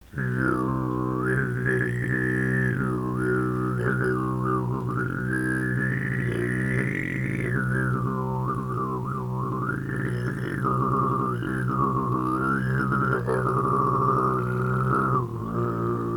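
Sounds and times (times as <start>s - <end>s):
sygyt throat singing: 0.0s - 16.1s.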